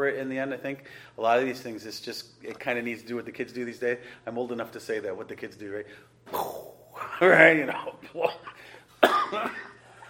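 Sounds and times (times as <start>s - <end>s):
speech: 0.0s - 8.6s, 9.3s - 9.6s
harsh coughs brought on by laughing: 7.7s - 9.8s.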